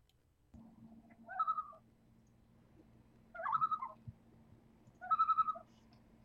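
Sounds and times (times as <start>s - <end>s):
faint low hum: 0.0s - 6.2s
common loon calling: 1.2s - 1.8s, 3.3s - 4.0s, 5.0s - 5.7s.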